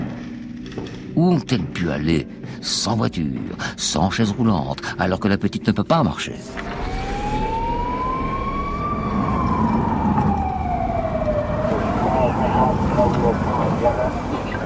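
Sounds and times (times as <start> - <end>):
speech: 0.8 - 6.9
police siren as officers arrive: 6.5 - 14.6.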